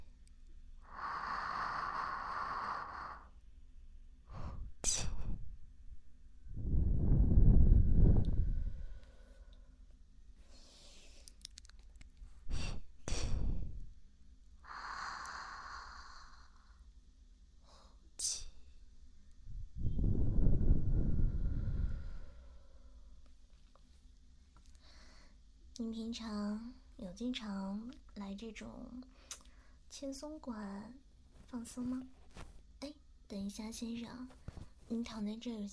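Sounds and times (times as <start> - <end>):
slow deep breathing during a relaxation session: 0.8 - 3.4, 4.3 - 5.3, 6.5 - 11.3, 14.6 - 16.9, 19.6 - 23.2, 24.7 - 25.4
speech: 25.8 - 29.2, 29.9 - 32.5, 33.3 - 35.7.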